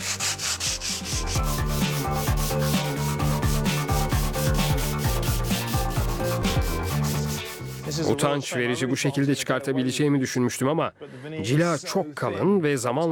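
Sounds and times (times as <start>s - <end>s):
hand sanding thin wood veneer: 0.0s - 8.2s
speech: 8.0s - 13.1s.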